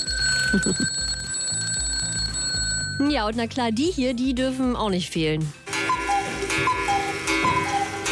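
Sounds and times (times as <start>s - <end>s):
old mechanical alarm clocks ringing in a clock museum in Lindenau: 0.0s - 3.2s, 5.7s - 8.1s
speech: 0.5s - 1.0s, 3.0s - 5.6s.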